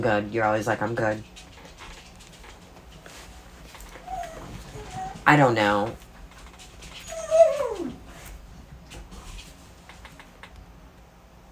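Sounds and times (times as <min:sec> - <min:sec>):
speech: 0:00.0 - 0:01.4, 0:05.3 - 0:06.0
low hum: 0:00.0 - 0:11.5
dog whimpering, whining and snuffling: 0:03.9 - 0:05.3, 0:07.0 - 0:08.1.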